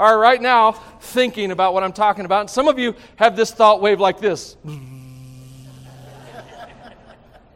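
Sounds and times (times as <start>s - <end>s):
speech: 0.0s - 4.9s
voice imitating radio static: 4.6s - 6.6s
laughter: 4.7s - 7.5s.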